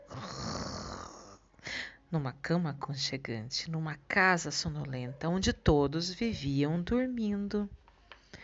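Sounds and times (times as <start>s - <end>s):
person imitating snoring: 0.1s - 1.5s
speech: 2.1s - 7.8s.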